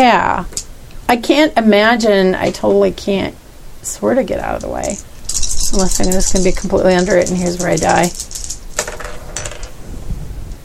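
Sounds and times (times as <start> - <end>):
speech: 0.0 - 8.4
many dice rolling on a tabletop in a game: 4.6 - 9.8.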